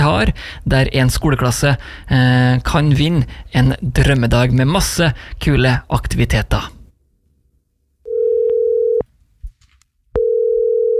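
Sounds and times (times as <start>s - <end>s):
speech: 0.0s - 6.8s
telephone ringback tone of an outgoing call: 8.1s - 9.0s, 10.2s - 10.9s.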